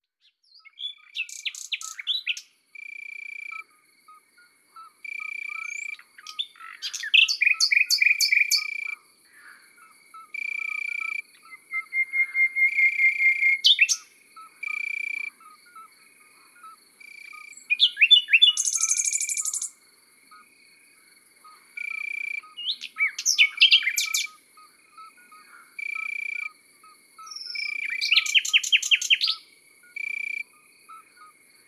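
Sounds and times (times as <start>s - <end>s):
common nightingale singing in the countryside: 0.2s - 3.7s, 4.8s - 9.0s, 10.2s - 19.8s, 21.5s - 31.1s
birds singing in the countryside: 0.3s - 2.5s, 5.1s - 15.9s, 16.5s - 19.8s, 21.5s - 26.5s, 27.2s - 30.1s.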